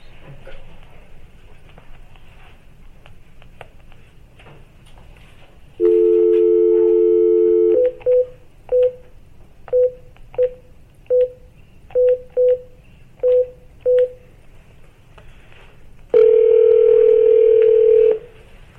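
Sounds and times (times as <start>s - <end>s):
quiet room noise: 0.0s - 18.7s
telephone dial tone: 5.8s - 8.2s, 16.2s - 18.2s.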